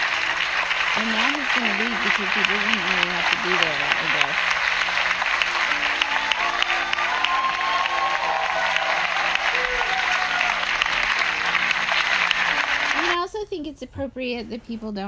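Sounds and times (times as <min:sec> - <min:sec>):
large audience applauding in a church: 0:00.0 - 0:13.2
speech: 0:01.0 - 0:04.6, 0:13.5 - 0:15.0.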